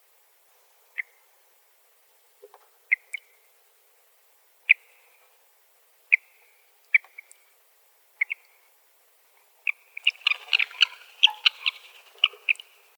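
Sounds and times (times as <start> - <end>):
mountain plover calls: 0.9 - 1.3, 2.9 - 3.5, 4.6 - 5.2, 6.0 - 7.4, 8.2 - 8.7, 9.6 - 12.9.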